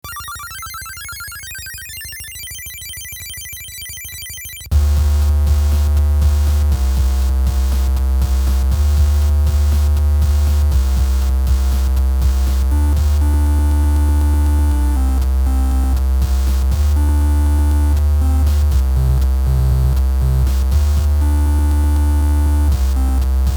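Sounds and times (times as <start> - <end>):
trash bass jam: 4.7 - 23.5.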